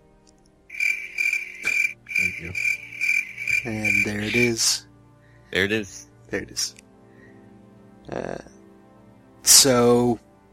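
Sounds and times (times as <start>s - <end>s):
cricket chirping sound effect: 0.7s - 4.6s
speech: 2.4s - 2.7s, 3.6s - 4.9s, 5.5s - 6.8s, 8.1s - 8.5s, 9.6s - 10.2s.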